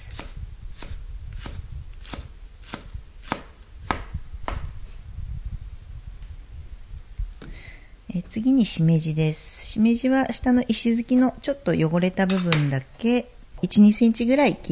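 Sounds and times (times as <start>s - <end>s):
knife finely mincing green onion: 0.0s - 4.6s
speech: 8.2s - 14.7s.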